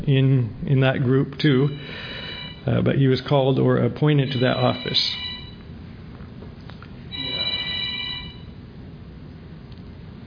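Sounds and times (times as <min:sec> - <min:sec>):
speech: 0:00.0 - 0:05.3
low hum: 0:00.0 - 0:10.2
telephone ringing: 0:01.6 - 0:02.8, 0:04.2 - 0:05.6, 0:07.1 - 0:08.6.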